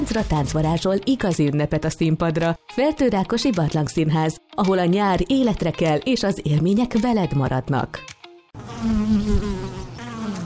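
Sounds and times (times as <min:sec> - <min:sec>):
speech: 0:00.1 - 0:09.6
bee buzzing: 0:08.6 - 0:10.4.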